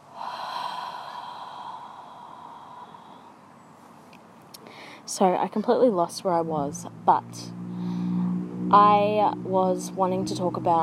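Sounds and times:
person breathing through the nose and mouth during a guided breathing exercise: 0:00.0 - 0:03.5, 0:04.6 - 0:05.1, 0:07.7 - 0:08.3
speech: 0:05.1 - 0:07.6, 0:08.7 - 0:10.8.

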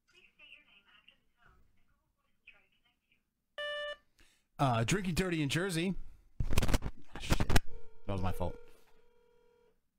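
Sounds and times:
electronic phone dialing tone: 0:03.6 - 0:04.0, 0:07.7 - 0:09.7
speech: 0:04.6 - 0:06.0, 0:08.2 - 0:08.6.

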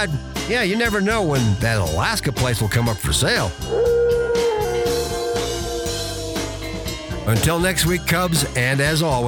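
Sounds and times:
speech: 0:00.0 - 0:04.0, 0:07.2 - 0:09.2
sled dogs howling: 0:03.6 - 0:08.6.

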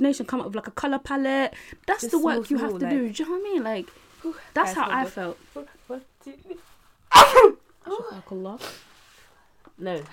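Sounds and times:
speech: 0:00.0 - 0:08.9, 0:09.8 - 0:10.1
person sneezing: 0:07.1 - 0:07.6.

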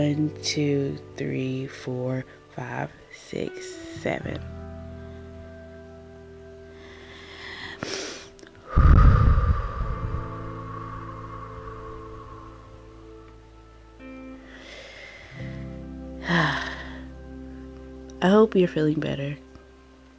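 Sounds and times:
speech: 0:00.0 - 0:04.6, 0:18.4 - 0:19.5
slow deep breathing from an anxiety grounding exercise: 0:06.7 - 0:13.2, 0:14.4 - 0:17.2.

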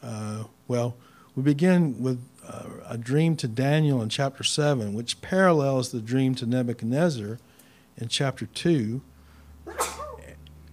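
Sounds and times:
speech: 0:00.7 - 0:02.3, 0:02.9 - 0:09.1
person sneezing: 0:09.7 - 0:10.4.

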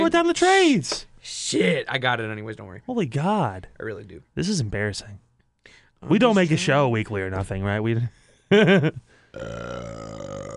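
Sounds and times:
speech: 0:00.0 - 0:10.4
loud guttural burp: 0:09.3 - 0:10.5.

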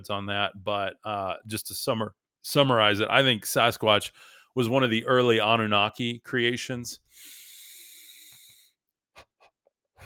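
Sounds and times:
speech: 0:00.0 - 0:07.4
deep breathing as breath work to relax the back: 0:04.1 - 0:04.6, 0:07.0 - 0:08.8.

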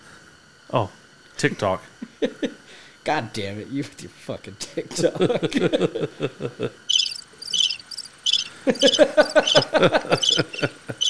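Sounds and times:
speech: 0:00.7 - 0:06.9, 0:08.6 - 0:11.0
laughter: 0:04.6 - 0:06.8, 0:08.5 - 0:11.0
crickets chirping: 0:06.1 - 0:11.0
lower repeated chirping notes: 0:06.9 - 0:11.0.

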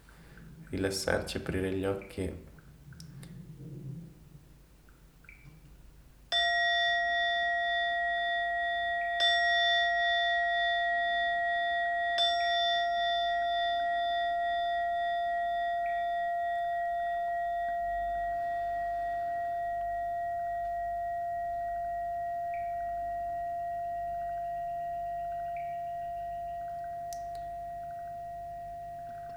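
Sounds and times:
speech: 0:00.7 - 0:02.5
meditation bell ringing: 0:06.3 - 0:29.3.

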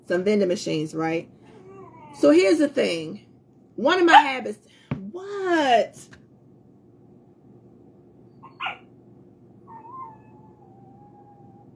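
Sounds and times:
low hum: 0:00.0 - 0:11.7
speech: 0:00.1 - 0:01.4, 0:02.1 - 0:06.2
dog whining: 0:01.4 - 0:02.3, 0:08.3 - 0:08.9, 0:09.6 - 0:11.7
dog barking: 0:08.4 - 0:08.9.

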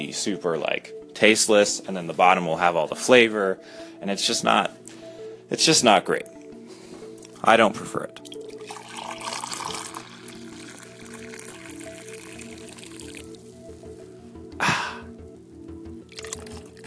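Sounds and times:
speech: 0:00.1 - 0:06.4, 0:07.4 - 0:08.5
coffee dripping while brewing: 0:08.2 - 0:13.4, 0:16.1 - 0:16.8.

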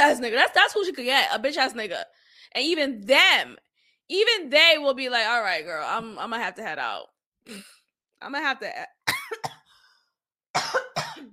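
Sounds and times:
speech: 0:00.1 - 0:09.6
rough coughs clearing a frog in the throat: 0:09.0 - 0:09.8, 0:10.5 - 0:11.3.

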